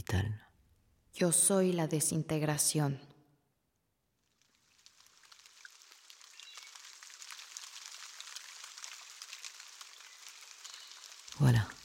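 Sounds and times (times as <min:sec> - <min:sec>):
speech: 0:00.1 - 0:00.5, 0:01.2 - 0:03.1
rain drops pattering on a surface: 0:04.3 - 0:11.8
rain falling: 0:04.3 - 0:11.8.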